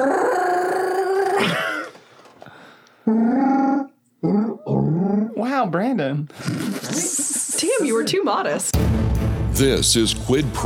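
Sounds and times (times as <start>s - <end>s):
person imitating a Wookiee growl: 0.0s - 1.9s, 3.0s - 5.5s
speech: 1.4s - 1.6s, 5.8s - 10.6s.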